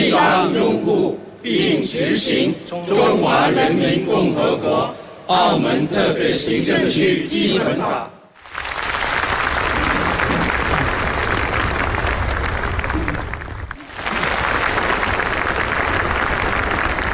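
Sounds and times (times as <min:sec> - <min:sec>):
speech: 0:00.1 - 0:08.1
large audience applauding warmly: 0:08.4 - 0:17.1.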